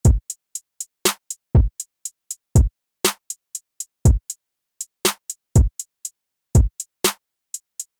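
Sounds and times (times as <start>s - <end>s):
drums with humanized timing: 0.0s - 7.9s.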